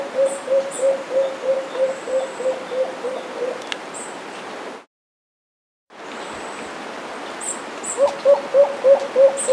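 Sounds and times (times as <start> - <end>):
black-billed cuckoo-dove low soft hooting coos: 0.0 - 3.6, 7.9 - 9.5.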